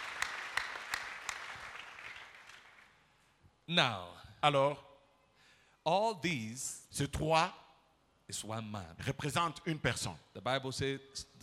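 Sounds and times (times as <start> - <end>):
church congregation clapping during a sermon: 0.0 - 3.1
speech: 3.7 - 4.9, 5.8 - 7.6, 8.3 - 11.4.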